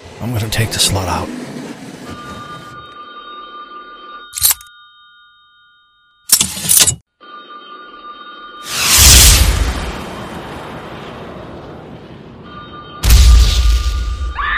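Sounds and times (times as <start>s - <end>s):
speech: 0.2s - 1.4s
M72 66mm anti-tank LAW rocket launcher firing in a video game: 8.7s - 12.2s, 13.0s - 14.4s.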